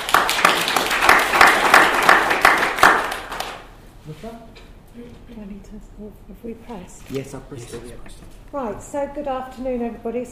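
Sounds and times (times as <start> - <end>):
audience at a talk applauding the speakers: 0.0 - 3.7
speech: 4.2 - 10.2.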